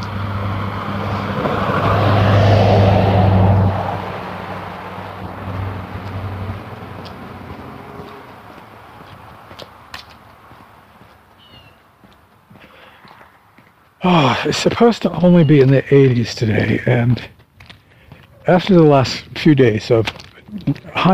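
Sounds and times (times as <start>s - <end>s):
car driving past: 0.0s - 10.9s
speech: 14.0s - 17.4s, 18.4s - 21.1s.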